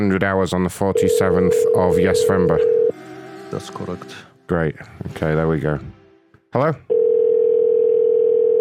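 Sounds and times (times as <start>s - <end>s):
speech: 0.0s - 2.8s, 3.5s - 7.0s
phone ringback tone while call connects: 1.0s - 2.9s, 6.9s - 8.5s.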